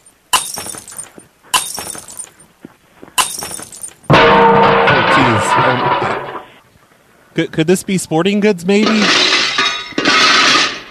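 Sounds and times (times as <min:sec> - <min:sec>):
glass objects shattering on a hard floor: 0:00.4 - 0:02.4, 0:03.2 - 0:06.5, 0:08.9 - 0:10.8
tinkling glass shards: 0:00.4 - 0:02.4, 0:03.2 - 0:04.1
speech: 0:07.4 - 0:09.4.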